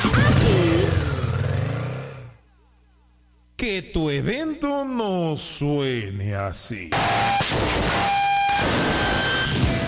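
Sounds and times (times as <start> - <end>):
motorcycle engine revving: 0.2 - 2.4
speech: 3.6 - 9.6.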